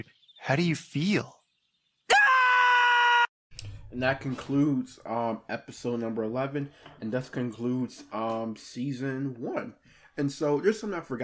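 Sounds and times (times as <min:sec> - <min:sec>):
speech: 0:00.0 - 0:01.4, 0:03.9 - 0:11.2
person screaming: 0:02.1 - 0:03.3.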